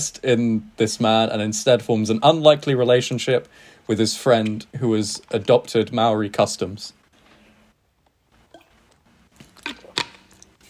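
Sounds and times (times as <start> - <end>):
speech: 0.0 - 7.0
person sipping water: 8.4 - 10.6.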